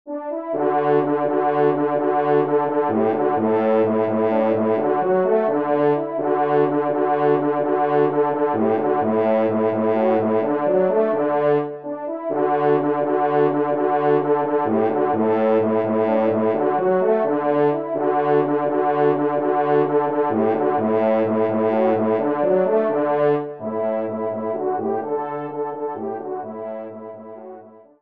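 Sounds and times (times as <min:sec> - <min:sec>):
hunting horn march: 0:00.1 - 0:27.9.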